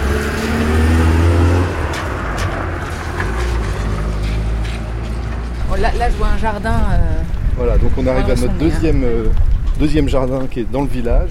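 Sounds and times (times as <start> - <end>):
garbage truck heavy engine rumbling: 0.0 - 10.3
speech: 5.8 - 11.2.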